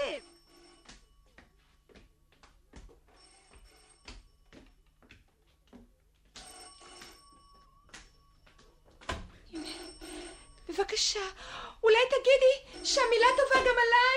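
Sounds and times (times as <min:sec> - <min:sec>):
telephone bell ringing: 0:00.0 - 0:01.8, 0:03.0 - 0:05.0, 0:06.3 - 0:11.3, 0:12.0 - 0:14.1
speech: 0:10.8 - 0:14.1.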